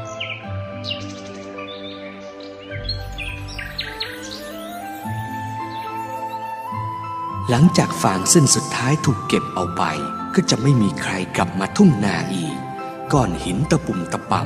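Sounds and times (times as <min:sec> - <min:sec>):
various birds calling over a ripe golden rice field at harvest time: 0:00.0 - 0:14.4
speech: 0:07.5 - 0:14.4.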